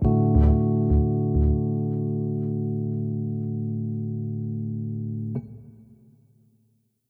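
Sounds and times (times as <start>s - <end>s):
synth pads: 0.0s - 4.4s
Rhodes electric piano: 0.0s - 5.8s.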